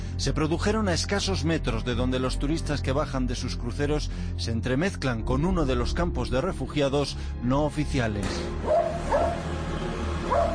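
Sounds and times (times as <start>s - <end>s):
speech: 0.2s - 8.8s
dog barking: 8.6s - 9.4s, 10.3s - 10.5s.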